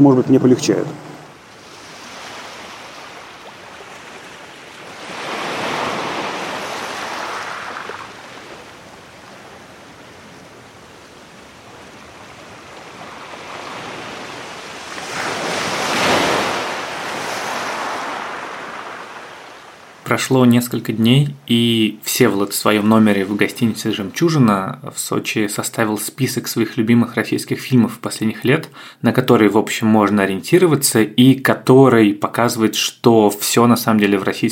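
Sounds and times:
speech: 0.0s - 1.1s, 20.1s - 34.4s
light wind: 0.0s - 20.1s
sea waves breaking on a beach: 0.0s - 20.2s, 22.0s - 24.4s
surf hiss: 0.4s - 20.3s.

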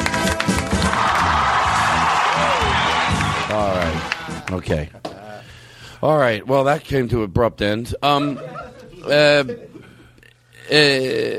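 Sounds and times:
loud studio audience applause: 0.0s - 4.8s
studio audience whoops and shouts: 0.8s - 4.2s
speech: 4.5s - 5.1s, 6.0s - 9.7s, 10.7s - 11.3s.

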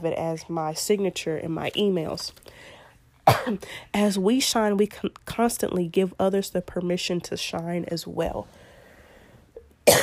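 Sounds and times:
speech: 0.0s - 8.6s
faint short breath or throat sound: 2.4s - 3.0s, 8.5s - 9.6s
loud harsh cough: 3.2s - 3.6s, 9.8s - 10.0s.

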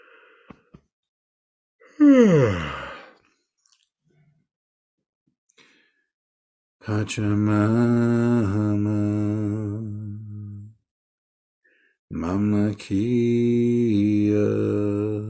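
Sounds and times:
drawn-out voiced yawn: 1.8s - 3.2s
speech: 2.0s - 2.8s, 6.9s - 9.4s, 12.2s - 14.8s.

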